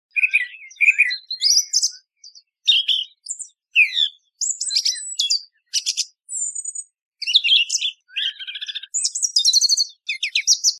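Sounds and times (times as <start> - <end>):
song thrush singing clear whistles, chirps and scratchy phrases: 0.0 - 10.7.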